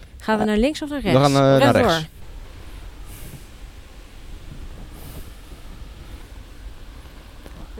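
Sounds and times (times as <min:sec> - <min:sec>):
speech: 0:00.2 - 0:02.2
wind rushing through tall grass: 0:02.0 - 0:07.7.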